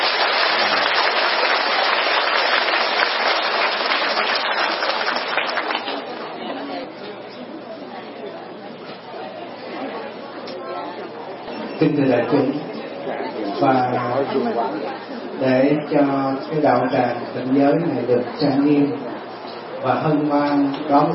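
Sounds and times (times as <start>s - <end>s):
audience applause: 0.0s - 6.3s
crowd murmur: 0.0s - 21.1s
speech: 12.0s - 12.6s, 13.6s - 19.1s, 19.8s - 21.1s.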